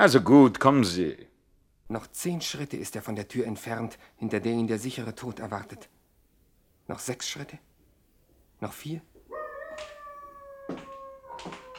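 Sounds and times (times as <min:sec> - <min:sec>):
speech: 0:00.0 - 0:01.2, 0:01.9 - 0:06.0, 0:06.9 - 0:07.7, 0:08.6 - 0:09.1, 0:10.7 - 0:11.6
dog howling: 0:09.3 - 0:11.7.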